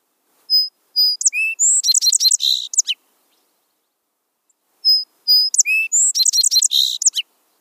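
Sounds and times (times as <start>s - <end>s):
song sparrow song with whistled notes and buzzy trill: 0.5s - 3.0s, 4.8s - 7.2s.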